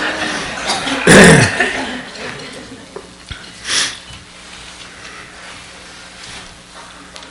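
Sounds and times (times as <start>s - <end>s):
laughter: 0.0s - 3.2s
breathy throat clearing: 0.7s - 1.8s
person coughing: 0.7s - 1.8s
shuffling: 4.1s - 7.2s.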